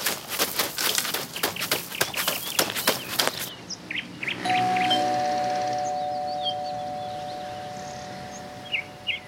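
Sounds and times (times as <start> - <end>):
birds chirping faintly outdoors: 0.0 - 9.2
doorbell ringing: 4.5 - 9.2.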